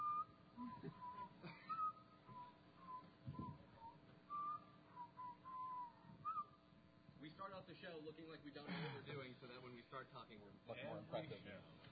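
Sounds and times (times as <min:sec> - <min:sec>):
person whistling a wandering uneven tune: 0:00.0 - 0:06.6
speech: 0:07.4 - 0:11.9.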